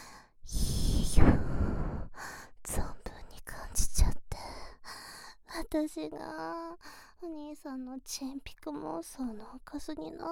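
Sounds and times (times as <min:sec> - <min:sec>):
young woman breathing and sighing into the microphone: 0:00.0 - 0:02.7, 0:04.5 - 0:05.5, 0:06.8 - 0:07.2
speech: 0:05.7 - 0:10.2.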